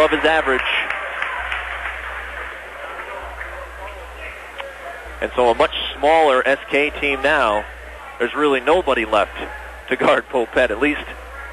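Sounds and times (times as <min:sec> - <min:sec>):
speech: 0:00.0 - 0:00.9, 0:05.2 - 0:11.2
crowd applause and cheering in an indoor basketball arena: 0:00.0 - 0:04.3.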